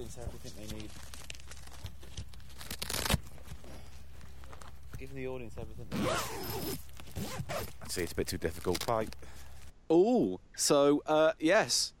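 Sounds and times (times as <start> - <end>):
speech: 0.0 - 1.3, 5.0 - 11.9
zipper being pulled open: 2.6 - 3.2, 5.9 - 7.9.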